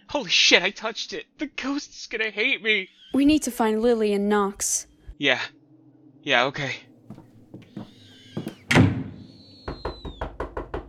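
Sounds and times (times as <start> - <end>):
speech: 0.2 - 5.6, 6.2 - 7.2
thin eerie whistling tone: 4.9 - 10.3
soft knocks: 7.1 - 10.8
door slamming shut: 7.6 - 9.3.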